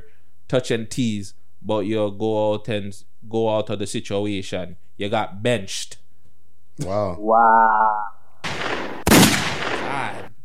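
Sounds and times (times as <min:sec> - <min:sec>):
speech: 0:00.5 - 0:06.0, 0:06.8 - 0:08.1
gunfire sound effect blast: 0:08.4 - 0:10.3.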